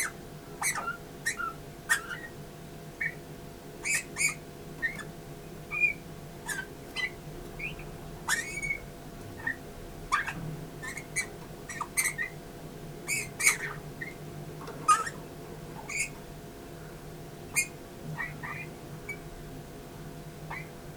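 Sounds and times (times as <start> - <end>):
Eurasian bullfinch piping calls: 0.0 - 2.4, 3.0 - 3.2, 3.8 - 12.4, 13.0 - 14.2, 14.9 - 15.2, 15.8 - 16.2, 17.5 - 19.3, 20.5 - 20.9
low steady hum: 0.0 - 20.9.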